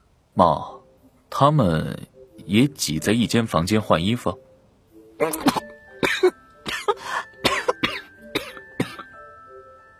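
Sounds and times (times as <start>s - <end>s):
speech: 0.4s - 4.5s, 5.2s - 6.4s
person coughing after water goes up the nose while bathing: 5.2s - 9.2s.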